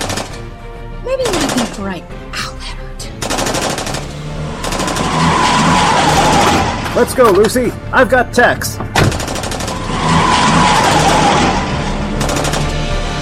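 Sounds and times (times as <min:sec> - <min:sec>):
gunfire in an action scene: 0:00.0 - 0:00.4, 0:01.2 - 0:01.8, 0:03.2 - 0:05.3, 0:09.1 - 0:09.8, 0:12.2 - 0:12.9
speech: 0:01.1 - 0:02.4, 0:07.0 - 0:09.1
roaring noise: 0:04.1 - 0:07.1, 0:09.4 - 0:13.1.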